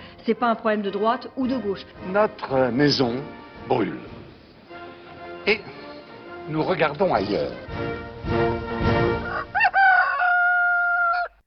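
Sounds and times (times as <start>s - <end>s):
speech: 0.2s - 4.2s, 5.5s - 5.8s, 6.5s - 8.4s
rooster crowing: 9.2s - 11.4s.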